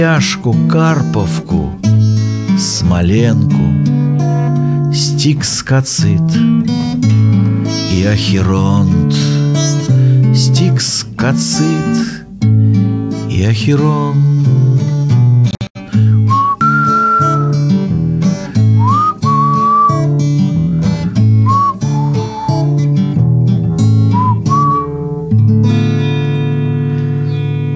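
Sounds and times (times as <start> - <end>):
speech: 0.0 - 2.0, 2.6 - 4.3, 4.9 - 9.4, 10.3 - 14.6
steady instrumental backing music: 0.6 - 5.4, 6.0 - 27.7
person whistling a gliding sliding melody: 16.0 - 17.8, 18.4 - 23.1, 24.1 - 25.0.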